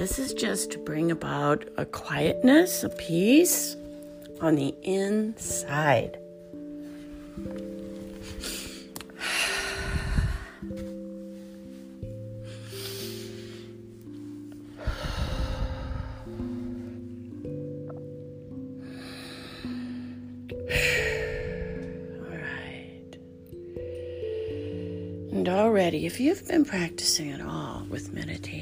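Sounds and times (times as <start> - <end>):
speech: 0.0 - 3.8, 4.4 - 6.2, 7.4 - 7.8, 26.2 - 28.6
soft sustained low musical tones: 0.0 - 28.6
slow deep breaths: 8.2 - 13.8, 14.6 - 17.1, 18.8 - 22.0.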